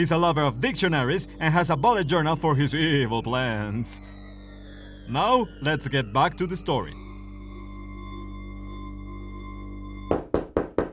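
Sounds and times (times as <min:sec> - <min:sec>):
speech: 0:00.0 - 0:04.2, 0:05.1 - 0:07.0
firm knocks on a door: 0:10.1 - 0:10.9.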